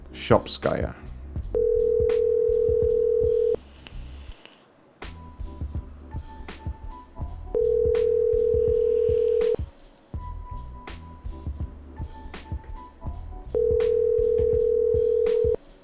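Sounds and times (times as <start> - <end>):
speech: 0.2 - 1.5
telephone dial tone: 1.6 - 3.6, 7.6 - 9.6, 13.6 - 15.6.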